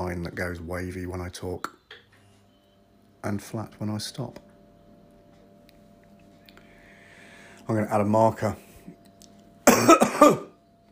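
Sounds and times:
speech: 0.2s - 1.8s, 3.2s - 4.5s, 7.7s - 9.0s, 9.8s - 10.5s
loud two-part cough: 9.6s - 10.6s.

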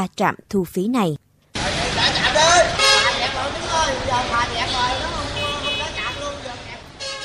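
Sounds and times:
speech: 0.0s - 1.2s
steady traffic rumble: 1.2s - 7.2s
car horns honking at a toll station: 2.6s - 3.4s, 4.8s - 7.2s.

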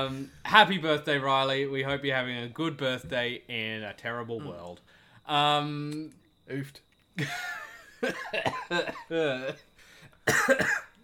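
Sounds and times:
speech: 0.0s - 9.7s, 10.3s - 10.8s
strained voiced gasps: 4.8s - 5.3s, 9.8s - 10.2s
harsh raspy coughing: 7.2s - 11.0s.

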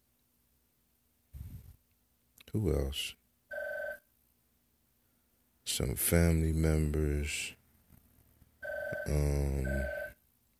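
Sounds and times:
speech: 2.5s - 3.2s, 5.7s - 7.6s, 9.0s - 10.0s
telephone ringing with a loud electronic tone: 3.5s - 4.0s, 8.6s - 10.2s.

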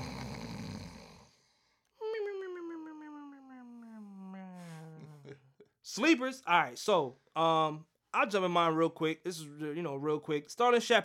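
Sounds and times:
cartoonish snore sound effect: 0.0s - 1.4s
speech: 5.8s - 11.0s.

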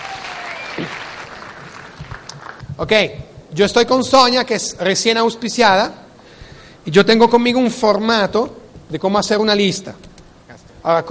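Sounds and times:
audience applause for a woman called onstage: 0.0s - 2.6s
speech: 2.8s - 6.0s, 6.8s - 10.1s, 10.8s - 11.0s.

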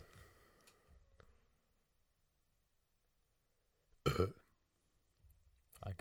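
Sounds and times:
loud burp: 4.0s - 4.4s
speech: 4.2s - 4.4s, 5.8s - 6.0s.

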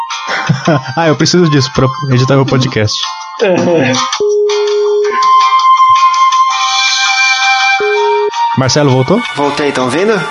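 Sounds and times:
bright tinny elevator-style hold music with sustained electronic tones: 0.0s - 10.2s
laughter: 0.3s - 2.8s
speech: 0.7s - 4.3s, 8.6s - 10.2s
low steady beep: 4.2s - 5.4s, 7.8s - 8.3s.

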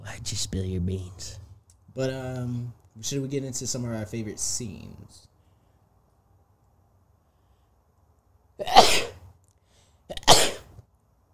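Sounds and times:
speech: 0.1s - 1.4s, 2.0s - 5.3s, 8.6s - 9.1s
person sneezing: 8.6s - 9.2s, 10.1s - 10.7s.

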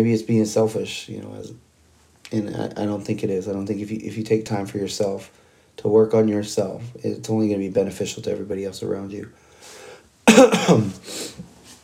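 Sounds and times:
speech: 0.0s - 1.7s, 2.3s - 11.5s
raspy coughing from a person getting over an illness: 10.3s - 11.3s.

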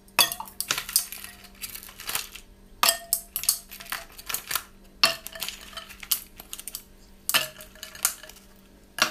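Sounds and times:
ice cubes clinking into a glass of tea: 0.2s - 8.4s.

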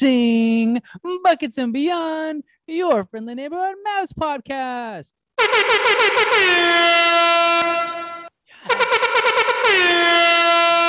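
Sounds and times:
speech: 0.0s - 8.0s, 8.6s - 10.4s
loud blaring air horn blasts: 5.4s - 10.8s.

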